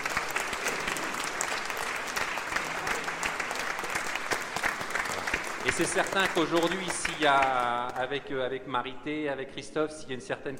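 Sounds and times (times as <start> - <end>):
audience applause: 0.0 - 8.2
speech: 5.7 - 10.5.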